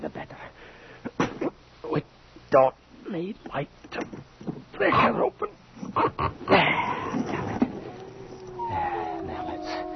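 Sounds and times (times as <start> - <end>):
speech: 2.5 - 4.2, 4.8 - 6.6
several dogs whimpering and whining: 7.0 - 9.9.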